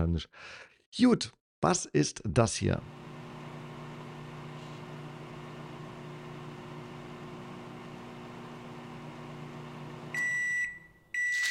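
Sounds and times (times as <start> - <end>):
speech: 0.0 - 3.0
microwave oven humming: 2.8 - 11.1
microwave oven electronic beeps: 10.2 - 11.4.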